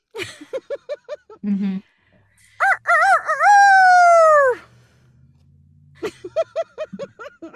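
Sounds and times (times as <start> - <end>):
laughter: 0.2 - 1.7, 6.0 - 7.5
person imitating a rooster crowing: 2.6 - 4.7.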